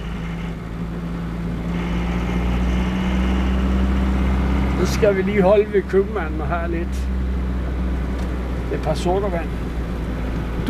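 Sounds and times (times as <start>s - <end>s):
car engine idling: 0.0s - 10.6s
speech: 4.8s - 7.2s, 8.7s - 9.8s.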